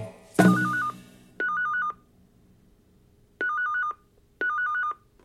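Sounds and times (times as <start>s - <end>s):
telephone ringing with a warbling electronic trill: 0.4s - 2.0s, 3.4s - 5.0s.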